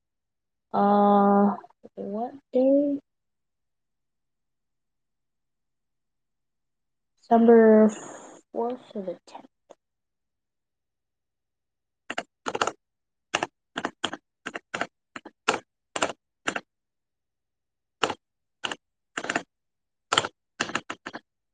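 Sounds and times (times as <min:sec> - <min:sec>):
speech: 0:00.7 - 0:03.0, 0:07.3 - 0:09.5
typing on a computer keyboard: 0:12.1 - 0:16.7, 0:18.0 - 0:19.5, 0:20.1 - 0:21.3.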